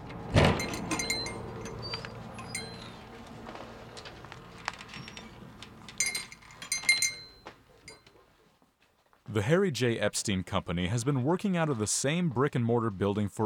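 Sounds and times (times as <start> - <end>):
metal screws and bolts clinking in a hardware store: 0.4 - 3.0, 5.8 - 8.2
light tapping and jingling: 0.5 - 3.3, 4.7 - 8.2
speech: 9.3 - 13.4.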